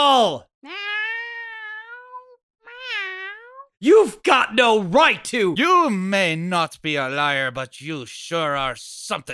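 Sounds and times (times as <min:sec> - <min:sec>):
speech: 0:00.0 - 0:00.8, 0:03.8 - 0:09.3
cat meowing: 0:00.6 - 0:03.7.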